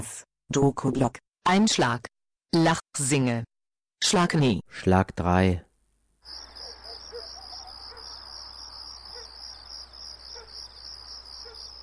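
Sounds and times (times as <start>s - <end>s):
speech: 0.5s - 5.7s
cicadas droning at night near a road in the Gaza Strip: 6.2s - 11.8s
faint chirps: 6.3s - 11.8s
street dogs: 6.6s - 8.2s, 9.1s - 9.4s, 10.3s - 10.6s, 11.4s - 11.8s.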